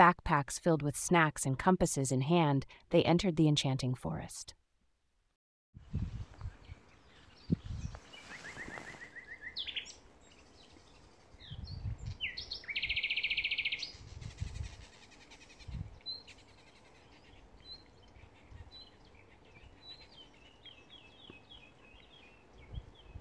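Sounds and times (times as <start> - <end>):
speech: 0.0 - 4.6
leaves rustling in a gentle breeze: 5.8 - 23.1
birds chirping and twittering in a forest: 6.4 - 23.1.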